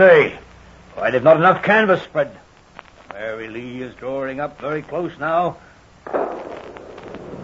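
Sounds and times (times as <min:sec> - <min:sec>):
speech: 0:00.0 - 0:00.4, 0:01.0 - 0:02.4, 0:03.1 - 0:06.4
scattered crackles and pops: 0:00.0 - 0:07.4
sustained roar of a ship fire at sea: 0:00.0 - 0:07.4
ship exploding at sea: 0:06.0 - 0:07.4.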